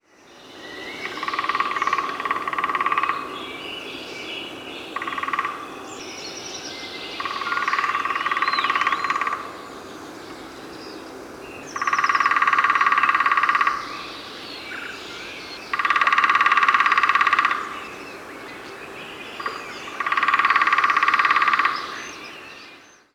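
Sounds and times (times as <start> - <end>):
lesser spotted woodpecker: 1.0 - 3.4, 5.0 - 5.6, 7.2 - 9.5, 11.8 - 14.0, 15.7 - 17.8, 19.4 - 22.1.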